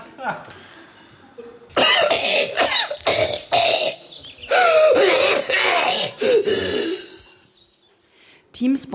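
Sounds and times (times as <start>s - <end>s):
person coughing: 1.7s - 4.0s, 4.6s - 7.2s
speech: 8.6s - 8.9s.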